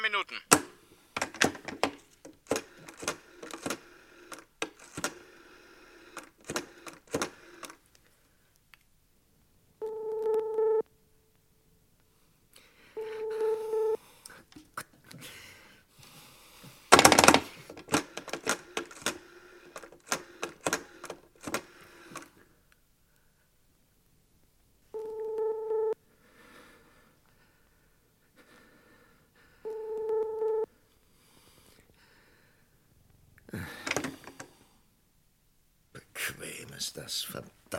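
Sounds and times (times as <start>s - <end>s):
speech: 0.1s - 0.7s, 37.0s - 37.7s
telephone dialing clicks and taps: 0.5s - 5.2s, 6.1s - 7.8s, 17.0s - 22.3s, 29.7s - 30.6s
steady electronic telephone line tone: 9.8s - 10.9s, 13.0s - 14.0s, 25.0s - 26.0s, 29.7s - 30.7s.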